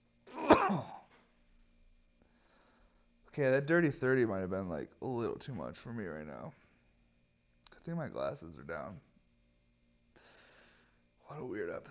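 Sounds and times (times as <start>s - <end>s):
cough into a microphone: 0.3s - 1.2s
speech: 3.4s - 6.6s, 7.9s - 9.1s, 11.3s - 11.8s.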